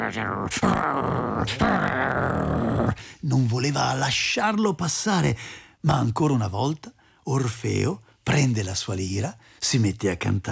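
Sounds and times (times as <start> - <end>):
person imitating angry dog growling: 0.0 - 3.1
speech: 0.1 - 10.5.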